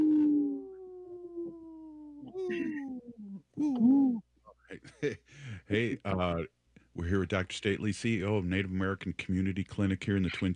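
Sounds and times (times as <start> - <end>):
wolves howling: 0.0 - 3.4
speech: 3.6 - 10.5.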